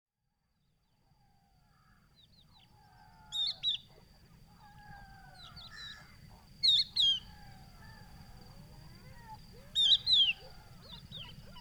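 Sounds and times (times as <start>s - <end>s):
Crested lark Galerida cristata giving descending whistles in the Camargue: 9.6s - 11.6s.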